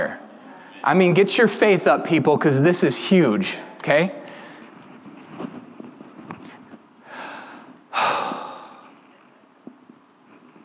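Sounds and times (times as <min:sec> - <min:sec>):
speech: 0:00.0 - 0:00.2, 0:00.8 - 0:04.2
person taking a deep breath: 0:07.0 - 0:08.9.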